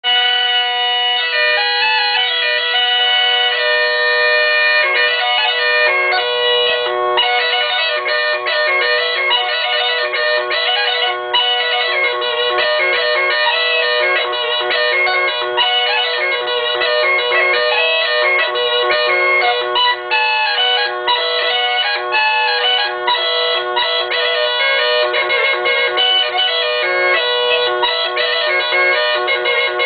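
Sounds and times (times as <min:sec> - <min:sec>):
bagpipes playing in Pohronsky Inovec: 0:00.1 - 0:29.8.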